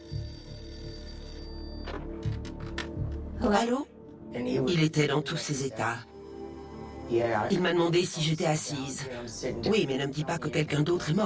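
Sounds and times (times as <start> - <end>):
telephone ringing with a steady electronic tone: 0.0 - 3.0
speech: 3.5 - 6.1, 7.1 - 11.2.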